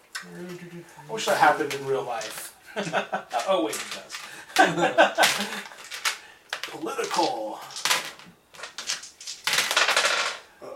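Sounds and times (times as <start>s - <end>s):
speech: 0.2s - 5.8s, 6.7s - 7.8s
laughter: 2.7s - 3.4s, 4.4s - 5.8s
dice clattering and rolling across a hard surface: 3.3s - 10.5s.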